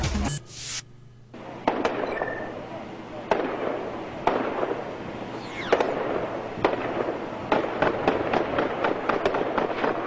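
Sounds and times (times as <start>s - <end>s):
gunfire from a hidden gunman ambushing police officers: 1.6s - 2.2s, 3.3s - 10.0s.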